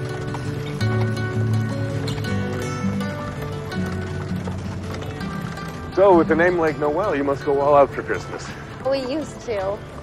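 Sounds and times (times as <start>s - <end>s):
dappled gray horses pulling a carriage clip-clopping on a hard road: 0.0s - 10.0s
speech: 6.0s - 9.9s.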